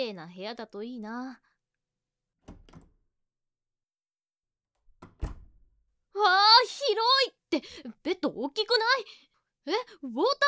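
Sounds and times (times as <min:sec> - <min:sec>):
speech: 0:00.0 - 0:01.5, 0:06.2 - 0:10.4
room door by the entryway opening: 0:02.4 - 0:03.0, 0:04.8 - 0:05.8.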